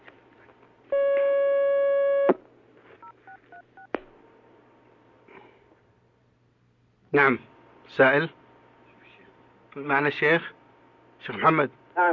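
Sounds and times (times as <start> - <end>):
long steady telephone tone: 0.9 - 2.4
speech: 7.1 - 8.4, 9.8 - 10.6, 11.2 - 12.1.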